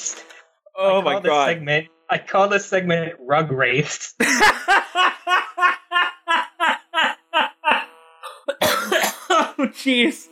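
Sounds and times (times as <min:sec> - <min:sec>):
speech: 0:00.8 - 0:06.0, 0:09.6 - 0:10.2
laughter: 0:04.2 - 0:09.8
rapid rhythmic coughing bursts: 0:07.7 - 0:09.7.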